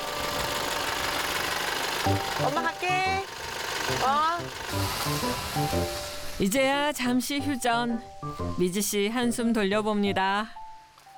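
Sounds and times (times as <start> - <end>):
school bus engine idling: 0.0 - 6.5
speech: 2.0 - 10.6.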